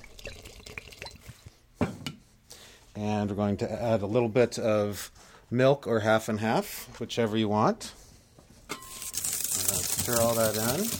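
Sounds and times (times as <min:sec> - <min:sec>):
bourbon poured into a drink: 0:00.0 - 0:01.4
speech: 0:03.0 - 0:08.0, 0:10.1 - 0:10.9.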